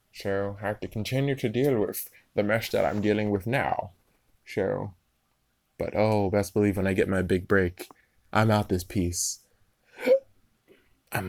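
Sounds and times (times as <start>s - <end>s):
speech: 0.2s - 5.0s, 5.8s - 9.4s
hiccup: 10.0s - 10.3s.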